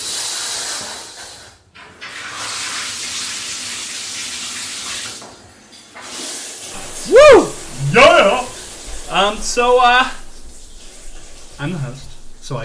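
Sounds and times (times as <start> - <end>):
shower water running: 0.0 - 12.6
speech: 9.2 - 10.2, 11.6 - 12.6.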